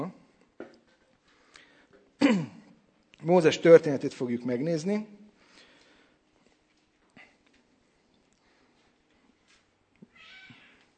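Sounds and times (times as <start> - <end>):
speech: 3.2 - 5.2
cat meowing: 10.1 - 10.8.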